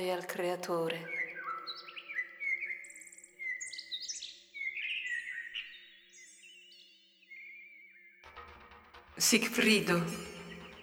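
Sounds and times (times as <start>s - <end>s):
speech: 0.0s - 1.2s, 9.2s - 10.3s
small bird singing: 0.0s - 8.2s, 10.0s - 10.8s.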